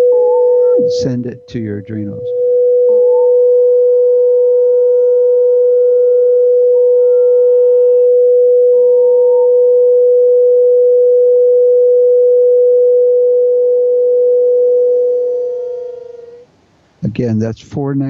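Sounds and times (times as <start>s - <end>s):
steady pure sine tone at 492.8 hertz: 0.0s - 17.1s
speech: 0.8s - 2.4s, 17.0s - 18.0s.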